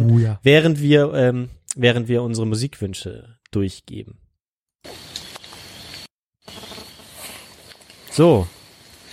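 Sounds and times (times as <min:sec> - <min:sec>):
speech: 0:00.0 - 0:04.2, 0:04.8 - 0:05.2, 0:08.2 - 0:08.6
rustling crunchy outdoor noise of forest hiking: 0:04.8 - 0:09.1
thin high insect drone in a forest: 0:04.9 - 0:09.1.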